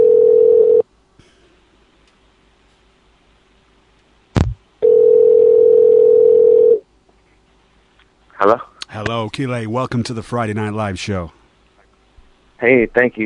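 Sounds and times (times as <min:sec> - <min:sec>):
phone line ringing tone on a live show call: 0:00.0 - 0:00.8, 0:04.8 - 0:06.8
speech: 0:08.4 - 0:11.4, 0:12.6 - 0:13.2.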